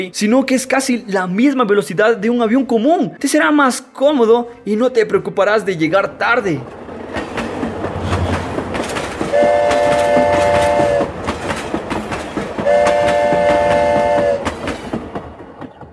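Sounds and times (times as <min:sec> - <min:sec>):
speech: 0:00.0 - 0:06.8
train rumbling and clattering on rails: 0:06.4 - 0:15.9
train horn blasts: 0:09.3 - 0:11.1, 0:12.6 - 0:14.5.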